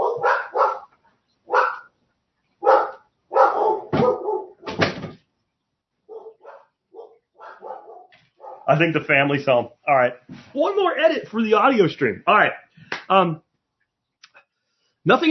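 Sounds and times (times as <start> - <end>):
several dogs barking: 0.0 - 2.0, 2.6 - 4.7, 6.1 - 8.8
speech: 8.7 - 13.4, 15.1 - 15.2.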